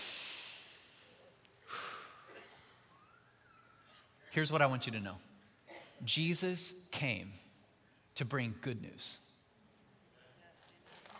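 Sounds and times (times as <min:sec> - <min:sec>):
deep breath in through the nose and out through the mouth: 0:00.0 - 0:02.9
speech: 0:04.4 - 0:05.3, 0:06.0 - 0:07.4, 0:08.2 - 0:09.3.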